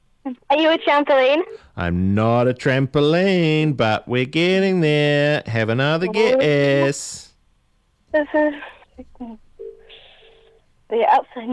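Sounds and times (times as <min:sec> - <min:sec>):
speech: 0:00.3 - 0:07.3, 0:08.1 - 0:09.4, 0:10.9 - 0:11.5
phone ringing faintly in the background: 0:04.8 - 0:07.2, 0:08.4 - 0:11.5.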